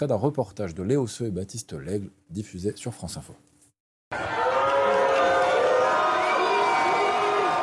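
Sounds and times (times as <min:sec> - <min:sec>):
speech: 0:00.0 - 0:03.5
large crowd booing the president on a field: 0:04.1 - 0:07.6.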